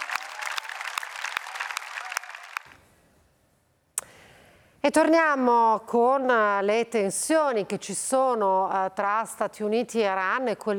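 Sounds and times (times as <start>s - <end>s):
opera audience applause: 0.0s - 2.8s
speech: 4.8s - 10.7s.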